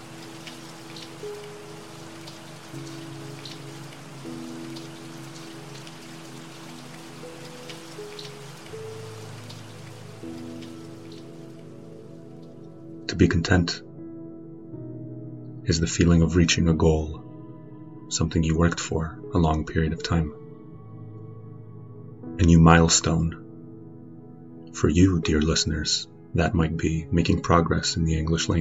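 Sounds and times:
light raindrops tapping against window glass: 0.0s - 11.8s
speech: 13.2s - 13.9s, 15.7s - 17.2s, 18.1s - 20.4s, 22.4s - 23.4s, 24.8s - 28.5s.

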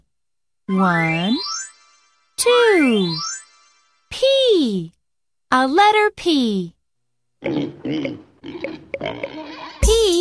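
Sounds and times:
speech: 0.7s - 1.6s, 2.4s - 3.3s, 4.2s - 6.8s, 7.4s - 10.2s
pig grunting and oinking: 7.4s - 9.8s.

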